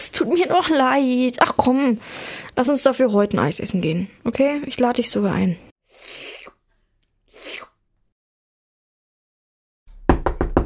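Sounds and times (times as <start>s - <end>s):
speech: 0.0s - 6.2s
mother knocking on a room door: 9.9s - 10.6s.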